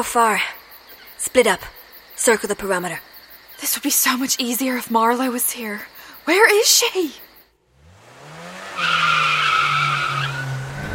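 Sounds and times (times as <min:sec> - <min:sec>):
speech: 0:00.0 - 0:00.6, 0:01.2 - 0:07.2
car tires screeching while skidding: 0:07.7 - 0:10.9.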